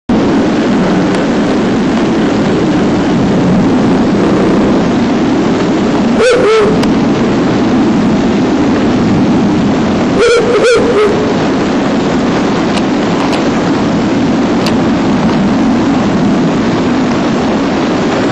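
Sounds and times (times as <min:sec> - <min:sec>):
dense continuous rushing noise: 0:00.1 - 0:18.2
male Ural owl hooting: 0:10.2 - 0:11.5.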